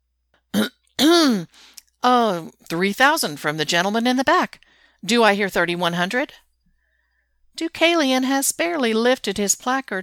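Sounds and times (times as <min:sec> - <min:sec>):
auction MC clearing his throat at a bidding sale: 0:00.6 - 0:01.5
speech: 0:02.4 - 0:06.4, 0:07.6 - 0:10.0
faint breath: 0:04.6 - 0:05.0, 0:06.6 - 0:07.5.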